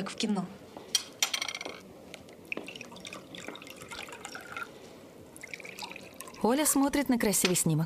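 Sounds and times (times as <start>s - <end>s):
speech: 0.0s - 0.6s, 6.4s - 7.8s
cola or juice poured from a freshly opened bottle into glasses: 2.3s - 6.8s.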